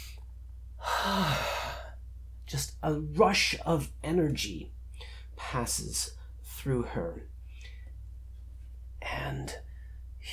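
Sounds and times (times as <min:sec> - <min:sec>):
person inhaling deeply: 0:00.8 - 0:02.0
speech: 0:02.5 - 0:04.8, 0:05.5 - 0:07.3, 0:09.2 - 0:10.3.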